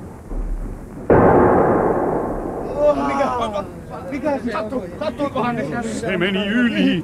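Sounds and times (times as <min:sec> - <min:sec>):
harpoon cannon shot fired from a ship: 0:00.1 - 0:04.0
speech: 0:03.4 - 0:07.0.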